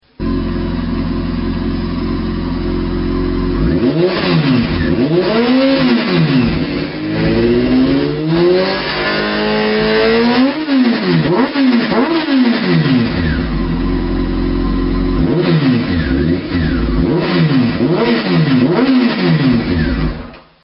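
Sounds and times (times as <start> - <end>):
Honda CBR F4i motorcycle exhaust: 0.0 - 20.4.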